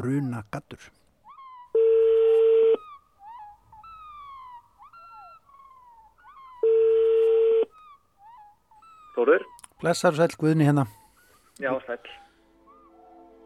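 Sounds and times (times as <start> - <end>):
speech: 0.0 - 1.0, 9.2 - 11.0, 11.6 - 12.2
long telephone beeps as a call is placed: 1.8 - 2.8, 6.6 - 7.7.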